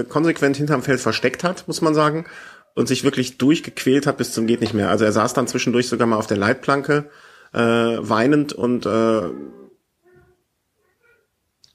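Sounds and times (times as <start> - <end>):
speech: 0.0 - 9.6
tomcat yowling and caterwauling: 9.0 - 11.2.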